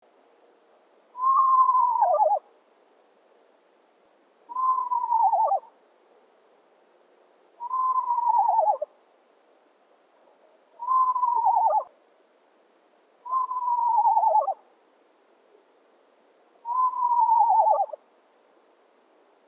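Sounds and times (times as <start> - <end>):
screech owl calling: 1.2 - 2.4, 4.5 - 5.7, 7.6 - 8.9, 10.8 - 11.9, 13.2 - 14.6, 16.6 - 18.0.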